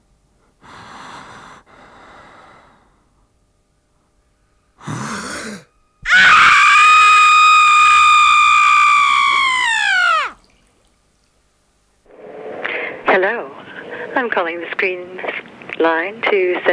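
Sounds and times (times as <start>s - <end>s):
man imitating a woman's childbirth scream: 6.0s - 10.4s
speech: 15.8s - 16.7s.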